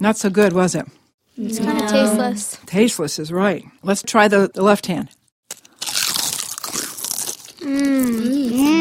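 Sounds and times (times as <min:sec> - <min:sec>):
speech: 0:00.0 - 0:05.2, 0:07.6 - 0:08.7
crunching of a salted potato chip: 0:05.4 - 0:08.7
drawn-out hummed vocal sound with a wavering pitch: 0:07.6 - 0:08.7.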